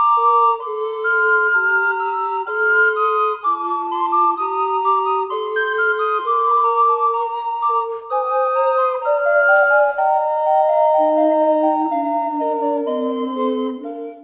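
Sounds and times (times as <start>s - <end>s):
four-part SATB choral fughetta: 0.1s - 14.2s.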